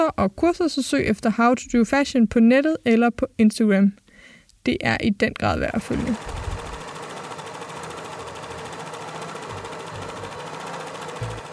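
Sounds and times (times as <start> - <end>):
speech: 0.0 - 4.0, 4.6 - 6.4
sewing machine stitching: 5.8 - 11.5.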